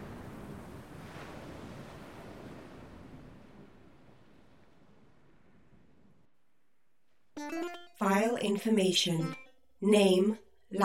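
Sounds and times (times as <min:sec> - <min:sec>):
raging ocean waves and surf around a ship: 0:00.0 - 0:05.6
gusting wind: 0:00.0 - 0:06.4
speech: 0:07.4 - 0:10.8.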